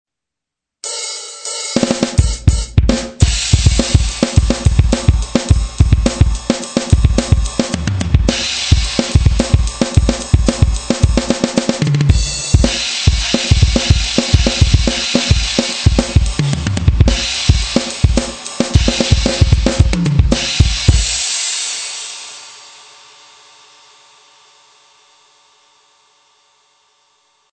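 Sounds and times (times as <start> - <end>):
bass drum hit: 2.3 - 21.2.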